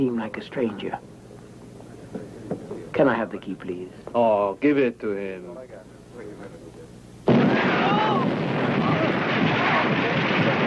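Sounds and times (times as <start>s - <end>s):
speech: 0.0s - 1.1s, 3.0s - 6.8s
loud explosion: 7.3s - 10.6s.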